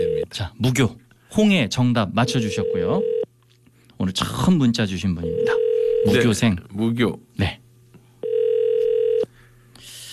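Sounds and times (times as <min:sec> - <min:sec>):
speech: 0:00.3 - 0:03.1, 0:04.0 - 0:07.6
telephone ringback tone while a listener is being called: 0:02.2 - 0:03.2, 0:05.2 - 0:06.2, 0:08.2 - 0:09.3.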